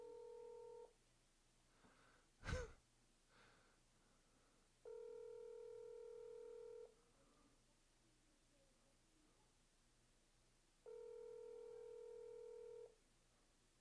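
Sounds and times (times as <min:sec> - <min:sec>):
WhatsApp call ringing tone: 0:00.0 - 0:00.9, 0:04.8 - 0:06.9, 0:10.8 - 0:12.9.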